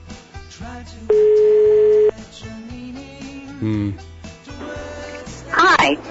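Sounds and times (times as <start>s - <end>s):
speech: 0.6s - 2.6s, 3.6s - 4.1s, 5.8s - 6.0s
telephone ringback tone during outgoing call: 1.1s - 2.2s.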